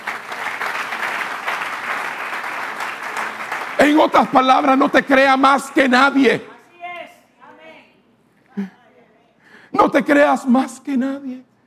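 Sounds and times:
audience applauding: 0:00.0 - 0:05.5
speech: 0:03.8 - 0:06.5, 0:09.8 - 0:11.5.

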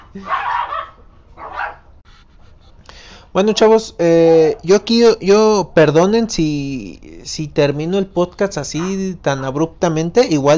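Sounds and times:
small dogs barking: 0:00.0 - 0:02.0, 0:08.7 - 0:09.7
speech: 0:00.2 - 0:00.4, 0:03.4 - 0:10.5.

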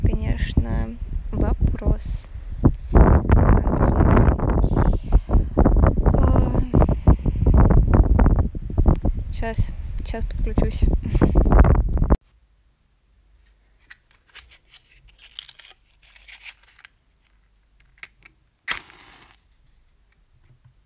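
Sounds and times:
loud wind buffeting the microphone: 0:00.0 - 0:12.2
speech: 0:09.4 - 0:11.3.

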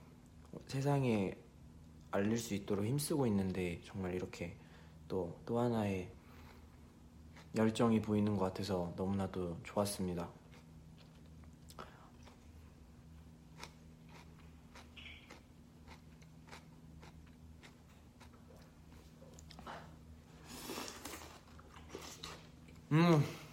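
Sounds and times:
low hum: 0:00.0 - 0:23.5
speech: 0:00.6 - 0:01.4, 0:02.1 - 0:06.2, 0:07.5 - 0:10.4, 0:22.9 - 0:23.4
biting and chewing a tomato: 0:06.4 - 0:08.1, 0:10.2 - 0:19.7.

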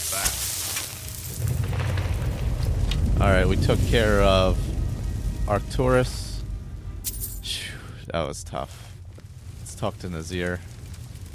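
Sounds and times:
video game player character burning with crackling, hissing fire: 0:00.0 - 0:11.3
speech: 0:03.2 - 0:04.8, 0:05.5 - 0:06.2, 0:08.1 - 0:08.8, 0:09.8 - 0:10.7.

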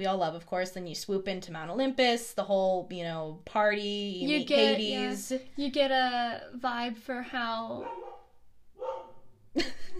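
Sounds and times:
speech: 0:00.0 - 0:08.0, 0:09.6 - 0:09.9
dog barking: 0:07.8 - 0:09.3.

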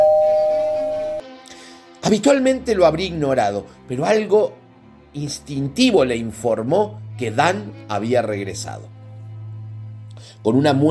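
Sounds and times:
doorbell chime ringing: 0:00.0 - 0:01.2
speech: 0:02.1 - 0:04.6, 0:05.2 - 0:09.0, 0:10.4 - 0:10.8.

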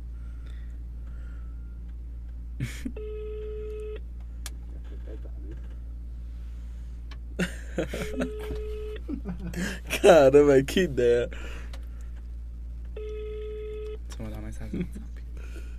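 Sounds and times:
low steady hum: 0:00.0 - 0:15.7
laughter: 0:02.6 - 0:03.0, 0:07.4 - 0:10.3
speech: 0:02.6 - 0:03.7, 0:05.1 - 0:05.9, 0:07.4 - 0:11.7, 0:14.2 - 0:15.2
electronic ringback tone of an outgoing phone call: 0:03.0 - 0:04.0, 0:08.0 - 0:09.0, 0:13.0 - 0:14.0.

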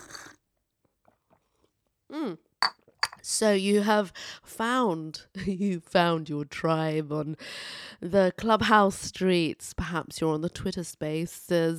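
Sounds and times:
gulping a drink: 0:00.0 - 0:00.3
drawn-out satisfied vocal ahh: 0:02.1 - 0:02.4
speech: 0:02.2 - 0:11.7.

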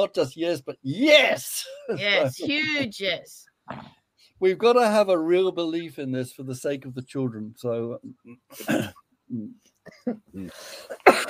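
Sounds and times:
speech: 0:00.0 - 0:11.2
person coughing: 0:08.6 - 0:09.0, 0:10.9 - 0:11.2.

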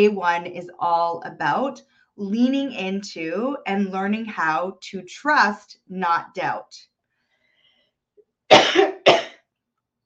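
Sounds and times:
speech: 0:00.0 - 0:06.9, 0:08.5 - 0:09.0
person with allergies coughing: 0:08.5 - 0:09.4.

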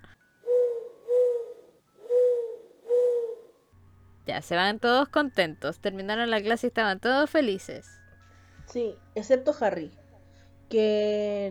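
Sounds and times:
owl hooting: 0:00.0 - 0:03.6
speech: 0:04.4 - 0:08.0, 0:08.7 - 0:10.0, 0:10.7 - 0:11.5.

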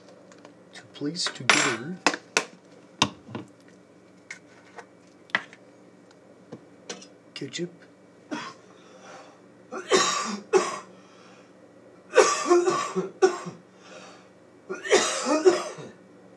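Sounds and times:
speech: 0:01.0 - 0:02.2, 0:07.4 - 0:07.9
man coughing in an audience: 0:08.3 - 0:08.6, 0:09.8 - 0:10.9, 0:12.1 - 0:13.6, 0:14.7 - 0:16.0.

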